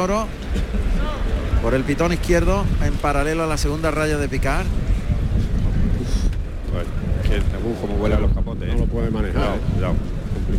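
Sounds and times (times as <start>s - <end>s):
speech: 0.0s - 4.8s, 6.8s - 10.5s
strong wind at a bullring buffeting the microphone: 0.0s - 10.5s.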